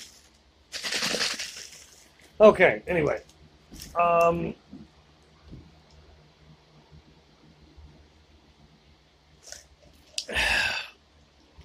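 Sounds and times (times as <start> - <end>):
ice rattling inside a plastic water bottle: 0.0 - 2.2
speech: 2.4 - 4.8.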